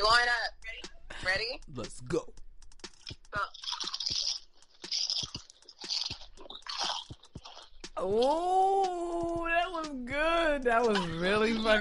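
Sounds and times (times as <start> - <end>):
speech: 0.0 - 2.4, 8.0 - 11.7
chips being bitten and chewed: 3.5 - 7.7.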